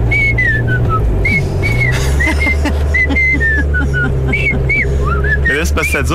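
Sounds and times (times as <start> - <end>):
man whistling a lilting tune in his truck: 0.0 - 6.1
steady low engine rumble: 0.0 - 6.1
laughter: 1.3 - 5.3
speech: 5.9 - 6.1.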